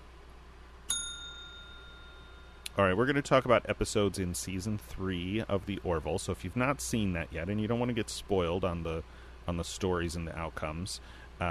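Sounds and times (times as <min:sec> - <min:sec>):
bright metallic bell ding: 0:00.9 - 0:02.7
speech: 0:02.8 - 0:11.4.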